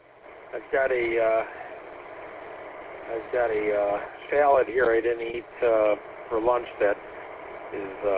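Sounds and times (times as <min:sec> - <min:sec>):
car engine idling in driveway: 0:00.0 - 0:08.1
speech: 0:00.5 - 0:01.6, 0:03.1 - 0:07.1, 0:07.7 - 0:08.1.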